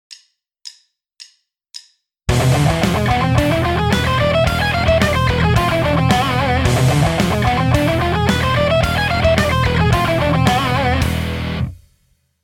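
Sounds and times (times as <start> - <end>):
alternate picking shred guitar lick: 2.3 - 11.8.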